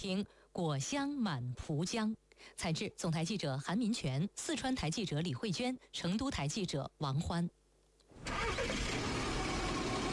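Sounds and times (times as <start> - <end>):
speech: 0.0 - 7.6
car engine starting and idling: 8.2 - 10.1.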